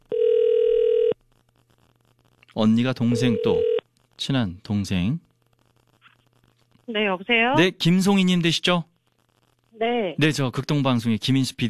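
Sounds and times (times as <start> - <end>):
ringback tone of an outgoing telephone call: 0.1 - 1.2, 3.1 - 3.8
speech: 2.6 - 5.3, 6.9 - 8.9, 9.8 - 11.6.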